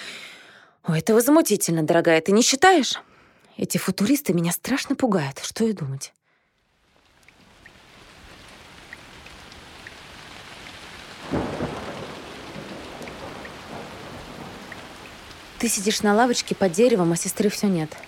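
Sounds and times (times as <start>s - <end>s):
speech: 0.9s - 6.2s, 15.6s - 18.0s
steady rain pattering on surfaces: 6.5s - 18.0s
low rumble of thunder: 11.2s - 17.6s.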